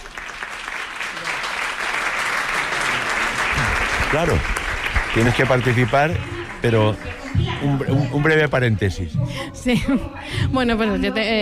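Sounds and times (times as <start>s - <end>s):
crowd applauding: 0.0s - 8.8s
speech: 4.1s - 4.6s, 5.2s - 11.4s.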